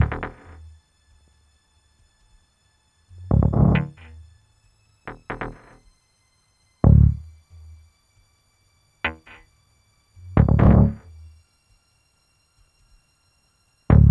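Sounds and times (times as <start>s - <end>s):
bass effect: 0.0s - 0.6s, 3.2s - 4.2s, 6.8s - 7.7s, 10.2s - 11.1s.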